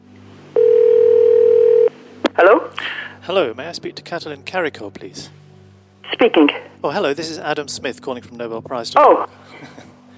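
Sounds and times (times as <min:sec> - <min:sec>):
telephone ringback tone on an outgoing call to a home in Pennsylvania: 0:00.6 - 0:01.9
speech: 0:03.3 - 0:05.4, 0:06.2 - 0:09.9.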